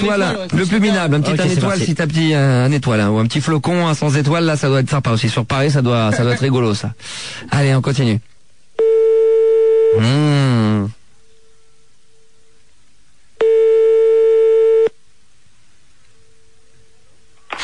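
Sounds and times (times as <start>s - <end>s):
speech: 0.0s - 8.3s, 9.9s - 11.0s
telephone ringback tone while calling a small hotel: 13.4s - 14.9s.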